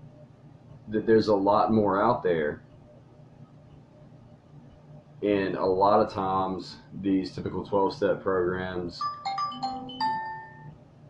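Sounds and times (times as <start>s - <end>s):
speech: 0.9s - 2.7s, 5.2s - 9.2s
mobile phone ringing with two bright electronic chime tones: 9.0s - 10.7s.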